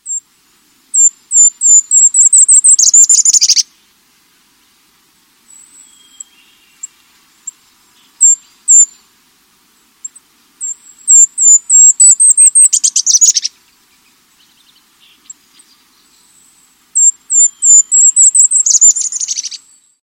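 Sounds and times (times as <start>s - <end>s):
golden-crowned kinglet calling: 0.9s - 3.7s, 5.5s - 9.1s, 10.0s - 13.7s, 17.0s - 19.8s.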